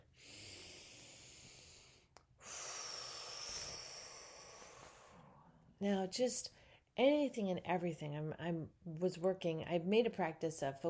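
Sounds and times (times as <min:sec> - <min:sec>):
deep breath: 0:00.0 - 0:05.7
speech: 0:05.8 - 0:10.8.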